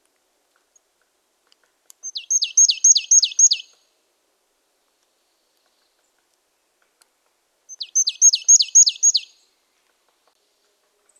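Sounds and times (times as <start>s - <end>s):
marsh tit Poecile palustris calling high descending notes: 2.0s - 3.7s, 7.7s - 9.3s.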